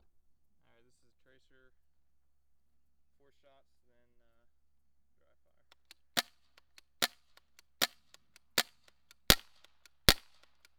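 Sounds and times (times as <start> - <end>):
guns firing: 7.8 - 10.5.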